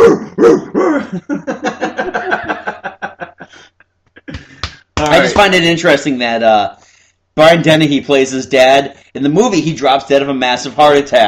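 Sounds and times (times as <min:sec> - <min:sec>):
dogs barking: 0:00.0 - 0:00.9
laughter: 0:01.0 - 0:05.4
speech: 0:01.1 - 0:01.6, 0:05.4 - 0:06.8, 0:07.4 - 0:11.2.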